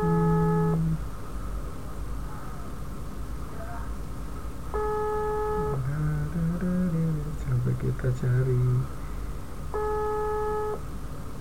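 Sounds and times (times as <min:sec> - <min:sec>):
telephone ringback tone from an unanswered call: 0:00.0 - 0:00.8, 0:04.8 - 0:05.8, 0:09.8 - 0:10.8
low rumble: 0:00.0 - 0:11.4
speech: 0:08.1 - 0:09.0.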